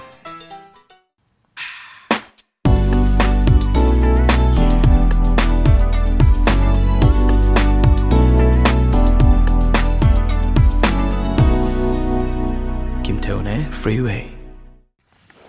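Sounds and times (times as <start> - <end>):
lush orchestral instrumental music with a driving beat: 2.7 - 14.6
speech: 13.9 - 14.4.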